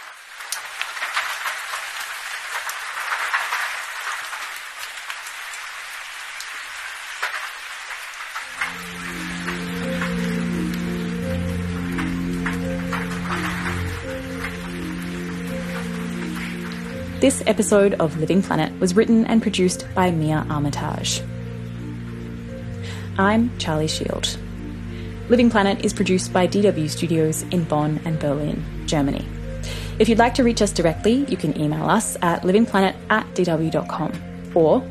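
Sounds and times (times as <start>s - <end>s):
rain pattering on a surface: 0.0s - 34.9s
soft sustained music: 8.4s - 34.9s
speech: 17.2s - 21.4s, 23.2s - 24.4s, 25.3s - 29.3s, 30.0s - 34.9s.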